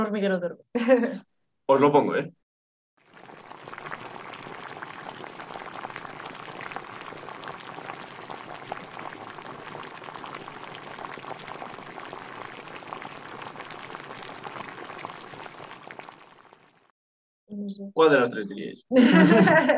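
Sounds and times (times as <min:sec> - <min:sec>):
speech: 0:00.0 - 0:02.4, 0:17.7 - 0:19.7
water at a rolling boil bubbling and popping: 0:03.0 - 0:16.9
laughter: 0:18.9 - 0:19.7.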